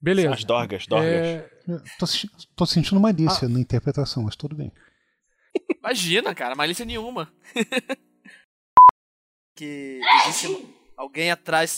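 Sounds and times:
speech: 0.0 - 4.9, 5.8 - 8.4, 9.6 - 11.7
laughter: 7.5 - 8.0
high-pitched sneeze: 10.0 - 10.8.

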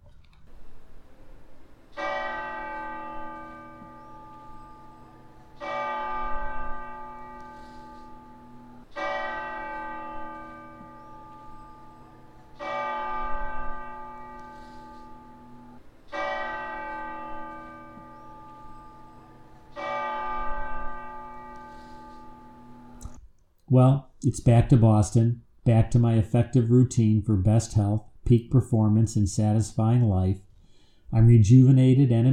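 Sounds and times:
big cathedral church bells tolling, recorded inside: 1.6 - 23.0
speech: 23.7 - 30.4, 31.1 - 32.3.

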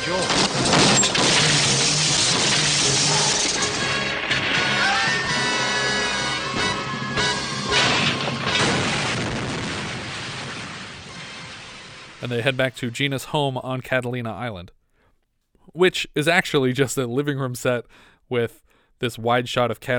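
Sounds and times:
debris smashing and shattering: 0.0 - 13.0
loud explosion of a car crashing off a cliff: 0.0 - 13.1
car crash: 0.0 - 13.2
speech: 12.3 - 14.8, 15.7 - 19.9.

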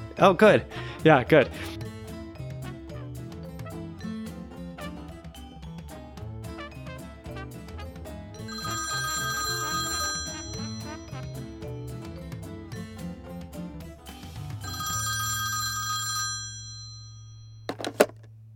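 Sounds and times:
busy music: 0.0 - 17.5
speech: 0.2 - 1.9
telephone ringing in bright trilling bursts: 8.4 - 11.8, 14.6 - 18.1.

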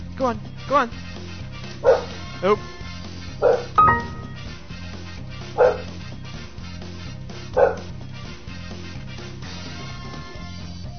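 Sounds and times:
speech: 0.2 - 1.2, 1.8 - 2.8
dog barking: 1.8 - 2.2, 3.4 - 3.8, 5.6 - 6.0, 7.5 - 7.9.

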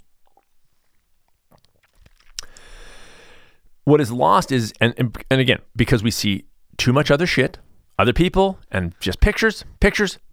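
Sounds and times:
sipping watered-down scotch from a glass: 0.2 - 3.7
speech: 3.9 - 10.2.

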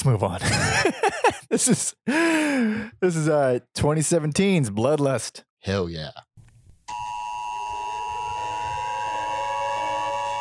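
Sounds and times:
speech: 0.0 - 6.3
laughter: 0.4 - 2.0
electronic siren wailing: 6.9 - 10.4.

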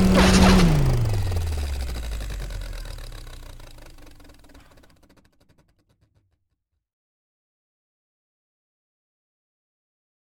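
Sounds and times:
machine powering-down sound effect: 0.0 - 6.0.

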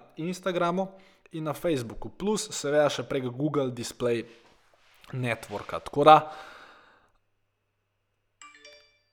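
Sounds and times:
speech: 0.2 - 4.5, 5.1 - 6.5
breathy exhale: 6.3 - 7.1
phone switching on with electronic startup chime: 8.4 - 9.1.

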